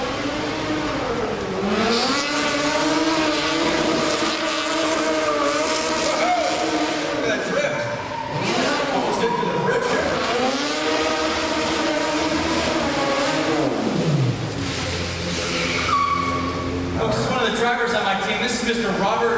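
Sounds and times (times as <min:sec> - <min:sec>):
camera pursuit car engine revving through gear changes: 0:00.0 - 0:19.2.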